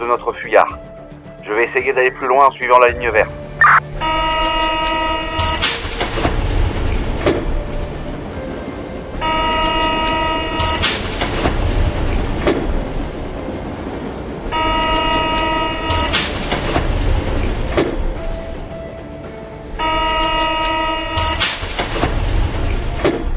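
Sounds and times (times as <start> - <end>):
speech: 0.0 - 4.0
continuous rumbling rail noise of trains at Saint-Lazare railway station in Paris: 0.0 - 23.3
train horn-like tone at Saint-Lazare railway station in Paris: 3.6 - 5.6, 9.2 - 10.9, 14.5 - 16.2, 19.8 - 21.5.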